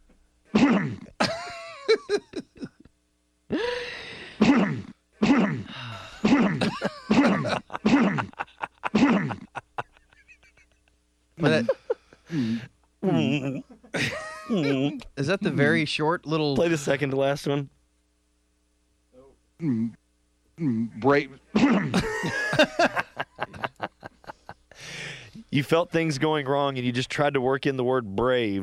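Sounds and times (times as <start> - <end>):
person coughing harsh and throaty: 0.5 - 1.5, 4.4 - 9.6, 21.6 - 22.4
laughter: 6.4 - 12.2, 13.1 - 14.9, 21.9 - 24.8
speech: 15.3 - 17.8, 19.6 - 20.0, 20.6 - 22.9, 25.5 - 28.6.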